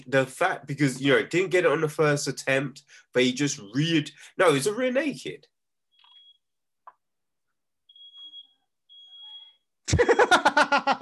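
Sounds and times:
speech: 0.0s - 5.5s, 9.9s - 10.9s
smoke alarm beeping and shrieking: 5.9s - 6.5s, 7.8s - 9.8s
laughter: 9.9s - 10.9s.

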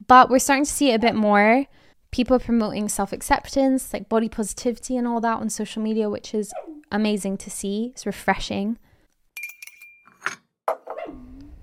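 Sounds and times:
speech: 0.1s - 8.8s
dog whining: 6.5s - 6.8s, 10.7s - 11.6s
light clinking: 9.4s - 10.4s
dog barking at a person: 10.7s - 11.3s.

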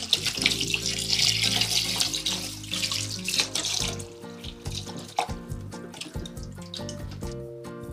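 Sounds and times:
tap water running in a sink while vegetables are rinsed: 0.0s - 7.4s.

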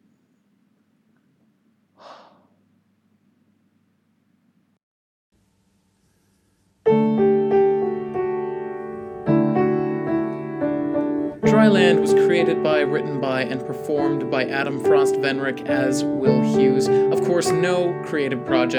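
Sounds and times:
person breathing out: 2.0s - 2.6s
sustained harmonious music tones: 7.1s - 18.7s
speech: 11.6s - 18.7s.

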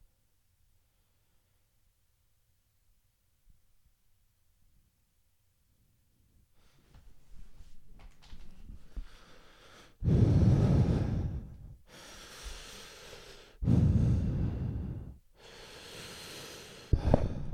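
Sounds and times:
heavy breathing near the microphone: 8.7s - 17.5s.

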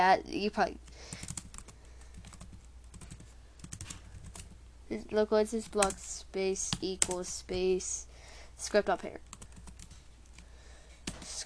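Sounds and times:
speech: 0.0s - 1.2s, 4.9s - 9.3s
typing on a computer keyboard: 1.1s - 4.6s, 5.6s - 6.0s, 6.6s - 7.4s, 9.2s - 10.0s.

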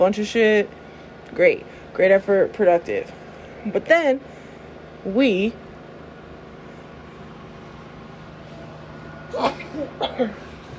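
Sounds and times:
speech: 0.0s - 4.3s, 5.0s - 5.6s, 9.4s - 10.4s
faint steady low hum: 0.0s - 10.7s
person sneezing: 9.4s - 10.5s.

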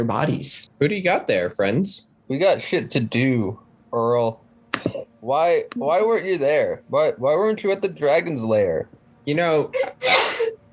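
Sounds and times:
speech: 0.0s - 10.2s
sneeze: 9.8s - 10.5s.

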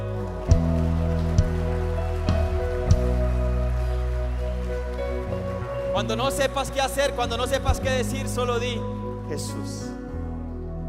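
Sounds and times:
audience applause: 0.0s - 8.3s
speech: 6.0s - 10.0s.

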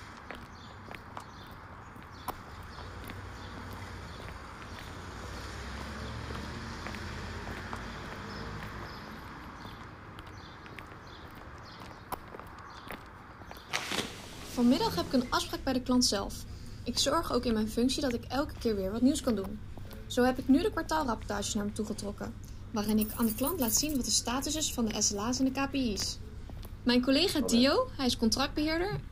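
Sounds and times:
footsteps crunching outdoors at a relaxed walking pace: 0.0s - 27.8s
light wind: 0.0s - 29.1s
constant hiss of ambient noise: 13.7s - 16.9s
speech: 14.6s - 26.2s, 26.8s - 29.0s.

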